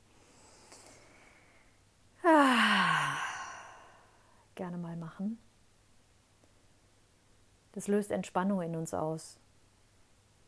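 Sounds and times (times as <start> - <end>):
loud breath released as a long voiced sigh: 2.2 - 4.4
speech: 4.6 - 5.5, 7.8 - 9.4.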